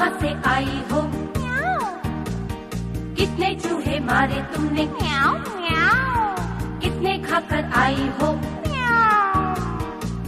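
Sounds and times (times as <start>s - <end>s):
speech: 0.2s - 1.0s, 3.2s - 9.2s
cat meowing: 1.4s - 2.2s, 5.0s - 6.6s, 8.6s - 10.1s.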